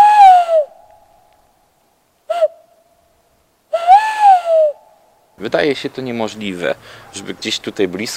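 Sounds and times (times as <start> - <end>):
tawny owl hooting: 0.0 - 0.9, 3.7 - 5.0
speech: 5.4 - 8.1.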